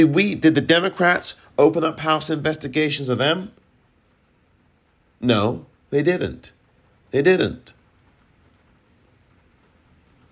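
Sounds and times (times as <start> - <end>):
speech: 0.0 - 3.6, 5.2 - 7.8
steady rain pouring in San Francisco California: 0.0 - 10.3.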